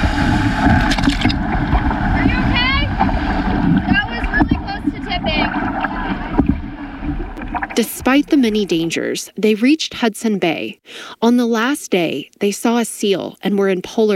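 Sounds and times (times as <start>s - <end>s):
gusty wind buffeting the microphone: 0.0s - 9.0s
canoe paddling through large choppy waves: 0.0s - 9.1s
speech: 8.1s - 14.1s.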